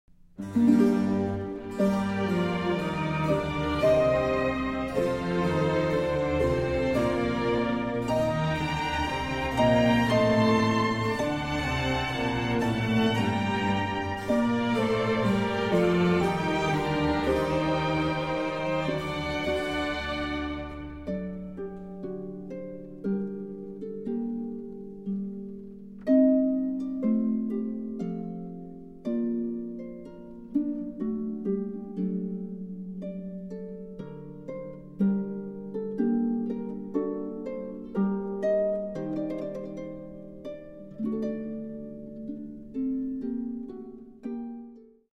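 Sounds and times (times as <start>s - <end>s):
harp and orchestra playing a larghetto: 0.3s - 45.1s.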